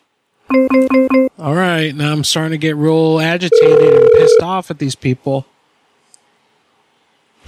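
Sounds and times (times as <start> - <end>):
phone line ringback tone of an unanswered call: 0.5 - 1.4, 3.5 - 4.4
speech: 0.6 - 5.6.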